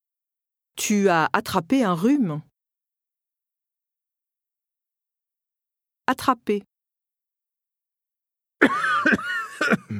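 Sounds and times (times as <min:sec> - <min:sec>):
speech: 0:00.8 - 0:02.5, 0:06.1 - 0:06.7, 0:09.7 - 0:09.9
harsh raspy coughs: 0:08.6 - 0:09.9.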